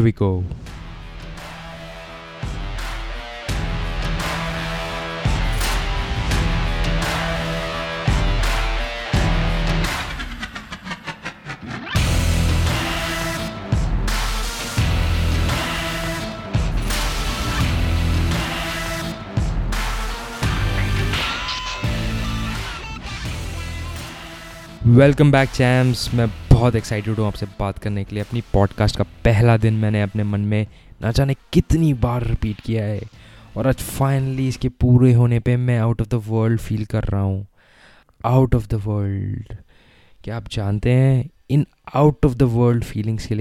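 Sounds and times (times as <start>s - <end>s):
speech: 0.0s - 0.6s, 25.0s - 37.5s, 38.2s - 39.6s, 40.2s - 43.4s
upbeat podcast intro song with heavy bass: 0.5s - 27.3s.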